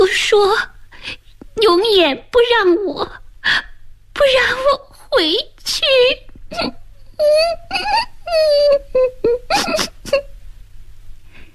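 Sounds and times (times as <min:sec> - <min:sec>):
speech: 0:00.2 - 0:10.3
child crying and sobbing mournfully: 0:06.5 - 0:10.3.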